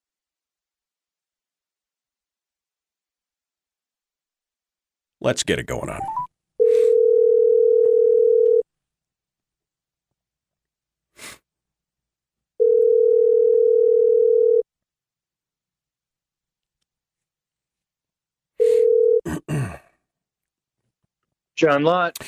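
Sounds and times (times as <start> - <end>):
speech: 5.2 - 6.3, 21.6 - 22.2
telephone ringback tone of an outgoing call through the handset: 6.0 - 8.6, 12.6 - 14.6, 18.6 - 19.2.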